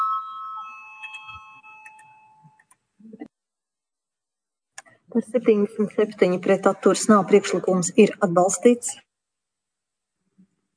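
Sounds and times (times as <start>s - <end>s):
voting bell ringing in a Latvian parliament chamber: 0.0s - 2.7s
speech: 5.1s - 9.1s.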